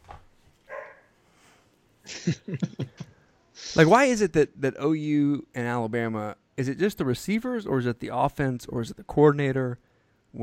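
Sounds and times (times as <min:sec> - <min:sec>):
dog barking: 0:00.7 - 0:01.1
laughter: 0:02.1 - 0:04.0
speech: 0:02.2 - 0:10.4.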